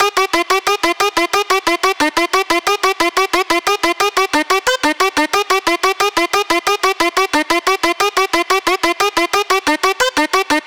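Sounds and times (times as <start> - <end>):
music drop loop in F minor: 0.0 - 10.6.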